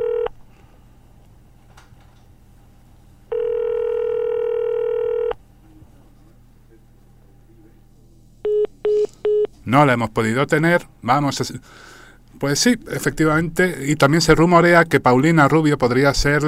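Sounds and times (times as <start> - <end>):
telephone tones while dialing a call: 0.0 - 0.3, 3.3 - 5.4
low constant hum: 0.0 - 16.4
speech: 9.7 - 16.4.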